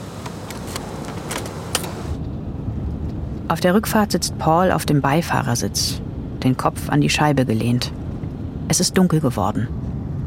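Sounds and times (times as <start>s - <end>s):
hissing road noise: 0.0s - 2.2s
car engine rumble: 0.0s - 4.6s, 5.4s - 8.8s
light clicks and rattles: 0.2s - 2.0s
speech: 3.5s - 8.0s, 8.7s - 9.8s.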